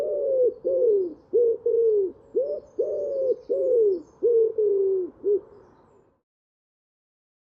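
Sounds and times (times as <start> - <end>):
common wood pigeon giving deep breathy coos: 0.0 - 5.6.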